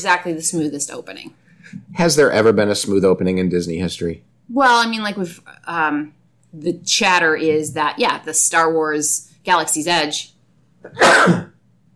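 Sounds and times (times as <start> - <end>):
speech: 0.0 - 11.5
sneeze: 10.9 - 11.6.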